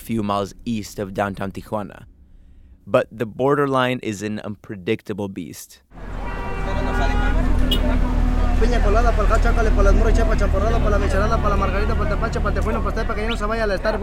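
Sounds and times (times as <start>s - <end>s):
idling cars and trucks stuck in line at the border near Tijuana: 0.0s - 2.9s, 5.9s - 14.0s
speech: 0.1s - 2.1s, 2.9s - 6.0s, 7.0s - 14.0s
crowd of voices calling and chattering: 6.0s - 14.0s.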